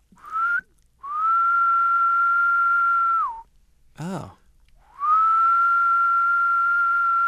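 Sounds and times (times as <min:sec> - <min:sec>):
person whistling a pure-tone call imitating a Decim cicada: 0:00.2 - 0:03.5, 0:04.9 - 0:07.2.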